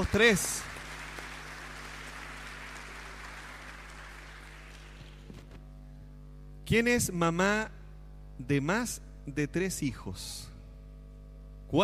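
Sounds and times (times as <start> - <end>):
speech: 0.0 - 0.7, 6.7 - 7.8, 8.4 - 10.5
audience applause: 0.0 - 5.3.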